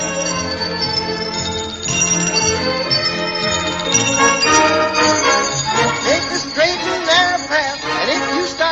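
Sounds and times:
several clock bells chiming together: 0:00.0 - 0:08.7.

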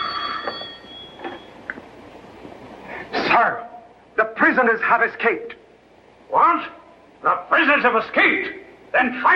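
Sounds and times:
telephone ringing with a bright electric trill: 0:00.0 - 0:01.6
speech: 0:03.4 - 0:03.7, 0:04.5 - 0:05.6, 0:06.3 - 0:09.3.

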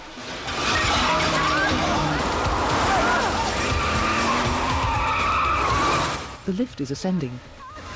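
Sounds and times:
4x4 skidding with squealing tires: 0:00.3 - 0:06.4
speech: 0:06.5 - 0:07.6.

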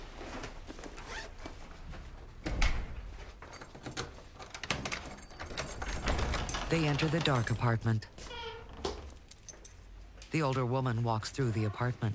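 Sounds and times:
apartment foyer door opening with rustling rattling handling noise: 0:02.4 - 0:09.7
speech: 0:06.7 - 0:08.2, 0:10.3 - 0:12.1.

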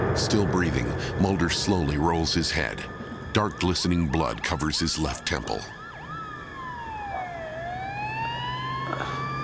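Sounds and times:
speech: 0:00.2 - 0:05.8
ambulance siren wailing at night: 0:03.1 - 0:09.4.

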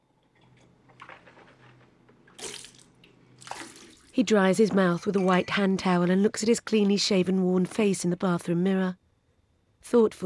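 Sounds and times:
man rinsing his mouth after brushing his teeth: 0:02.3 - 0:04.1
water running and splashing at a bathroom sink: 0:02.3 - 0:04.2
speech: 0:04.2 - 0:09.0, 0:09.8 - 0:10.2.

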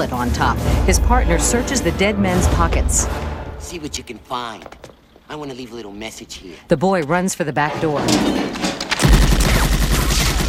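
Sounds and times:
speech: 0:00.0 - 0:08.7
Tommy gun firing bullets into a wall: 0:08.9 - 0:10.4.

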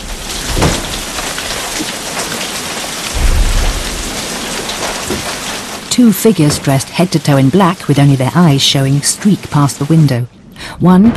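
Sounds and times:
lashing rain pouring down outside a cabin at night: 0:00.0 - 0:11.1
low rumbling swells: 0:03.1 - 0:04.8
speech: 0:06.0 - 0:11.1.

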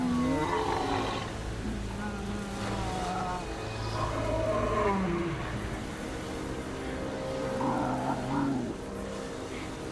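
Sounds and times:
tiger growling and roaring: 0:00.0 - 0:06.0, 0:07.1 - 0:08.9
faint hiss of rain or wind: 0:00.0 - 0:09.9.

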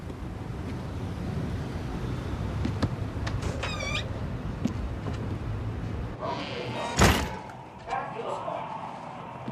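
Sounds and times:
steady outdoor noise on rain-soaked streets: 0:00.0 - 0:09.4
plain wooden tavern door creaking open: 0:03.3 - 0:04.2.

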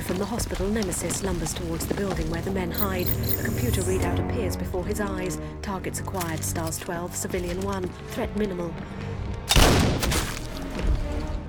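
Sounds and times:
speech: 0:00.1 - 0:09.3
sniper rifle gunshot: 0:09.5 - 0:10.4.

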